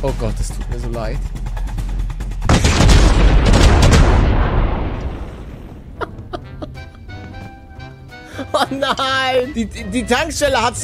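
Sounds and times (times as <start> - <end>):
speech: 0.0 - 1.5, 8.5 - 10.8
low rumbling: 0.3 - 8.1
crackling debris: 2.4 - 6.1
booming video game explosion: 2.4 - 6.4
laughter: 6.0 - 7.2, 8.2 - 9.9.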